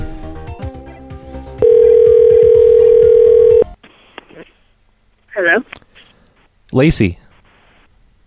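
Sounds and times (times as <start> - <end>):
phone line ringback tone: 1.6 - 3.8
speech: 6.7 - 7.2.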